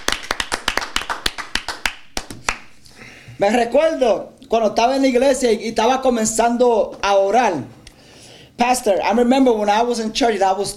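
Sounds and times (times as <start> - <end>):
congregation clapping hands in praise during a church service: 0.0 - 2.8
speech: 3.4 - 7.8, 8.6 - 10.7.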